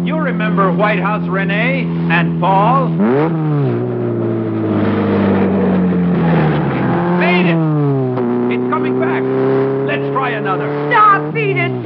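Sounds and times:
car engine roaring as the car is driven fast around corners: 0:00.0 - 0:11.8
speech: 0:00.2 - 0:03.8.

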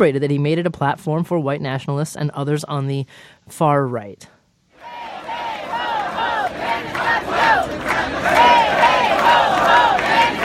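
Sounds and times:
speech: 0:00.0 - 0:04.4
crowd of protesters chanting at a protest: 0:04.8 - 0:10.4.

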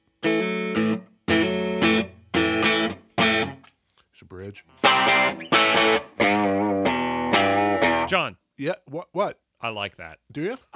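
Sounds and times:
electric guitar through neck humbucker pickup strumming ringing chords: 0:00.2 - 0:03.6, 0:04.8 - 0:08.1
speech: 0:04.2 - 0:06.6, 0:08.1 - 0:10.7.

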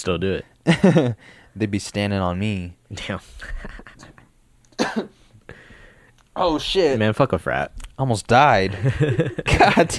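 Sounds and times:
speech: 0:00.0 - 0:04.2, 0:04.9 - 0:05.2, 0:06.4 - 0:09.9
person coughing: 0:04.8 - 0:05.2
laughter: 0:08.7 - 0:09.9.

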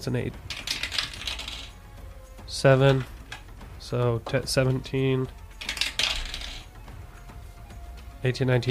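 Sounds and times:
speech: 0:00.0 - 0:00.6, 0:02.5 - 0:03.2, 0:03.9 - 0:05.4, 0:08.2 - 0:08.7
dice rolling on a table: 0:00.5 - 0:01.7, 0:05.6 - 0:06.7.

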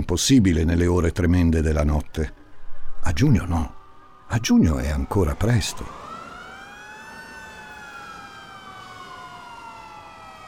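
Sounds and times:
steady rumble of traffic: 0:00.0 - 0:10.4
speech: 0:00.1 - 0:02.4, 0:03.0 - 0:06.1
fire engine siren wailing in a narrow lane: 0:02.3 - 0:10.4.

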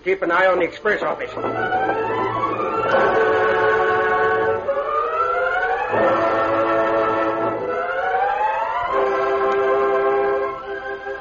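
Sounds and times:
speech: 0:00.0 - 0:02.1
rumbling undertone: 0:01.1 - 0:11.1
steam train whistle approaching: 0:01.5 - 0:11.1.

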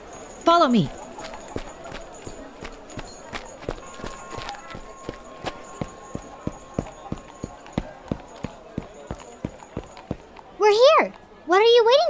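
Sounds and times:
horse hooves clip-clopping from passing carriages: 0:00.0 - 0:11.3
footsteps on a muddy slippery stone street: 0:00.0 - 0:11.5
speech: 0:00.5 - 0:01.0.

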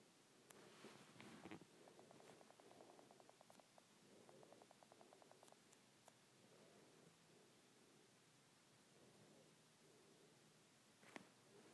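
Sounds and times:
faint low hum: 0:00.0 - 0:11.7
fingertips tapping on a tablet screen: 0:01.2 - 0:06.2.

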